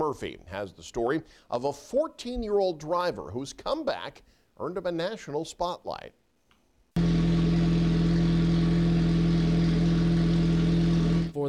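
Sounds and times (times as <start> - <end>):
speech: 0.1 - 6.2
car engine roaring: 7.0 - 11.3.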